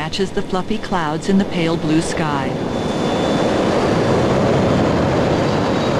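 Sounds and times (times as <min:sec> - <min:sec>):
faint high whine: 0:00.0 - 0:05.9
jet airliner engines roaring during takeoff: 0:00.0 - 0:05.9
speech: 0:00.1 - 0:02.9.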